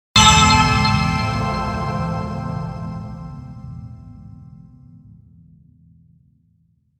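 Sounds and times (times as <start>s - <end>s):
synth burst twinkle hit accent transition: 0.2s - 4.0s.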